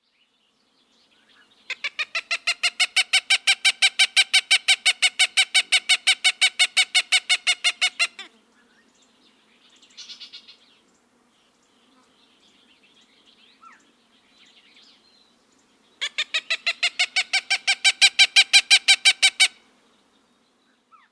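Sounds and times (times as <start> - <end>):
Cooper's Hawk calling: 1.7 - 8.4, 16.0 - 19.6.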